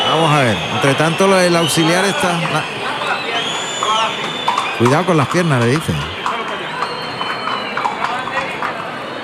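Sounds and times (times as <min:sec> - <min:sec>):
speech: 0:00.1 - 0:02.7, 0:04.1 - 0:06.1
Lusitano-Arab cross horse hooves clopping at a brisk pace: 0:02.1 - 0:09.2.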